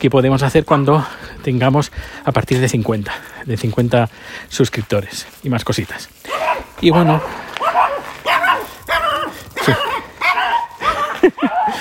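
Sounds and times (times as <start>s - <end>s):
speech: 0.0s - 7.5s, 9.6s - 9.9s
dog barking excitedly at another dog: 6.3s - 11.7s
laughter: 10.8s - 11.7s.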